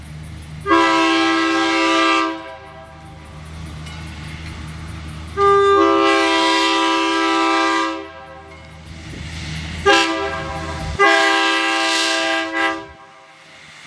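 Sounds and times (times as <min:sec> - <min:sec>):
diesel train horns: 0:00.6 - 0:03.3, 0:05.3 - 0:08.8, 0:09.7 - 0:13.4.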